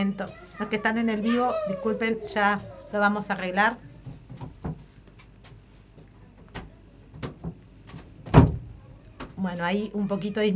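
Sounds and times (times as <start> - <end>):
speech: 0.0 - 3.9, 9.4 - 10.5
door shutting thud: 8.2 - 8.7.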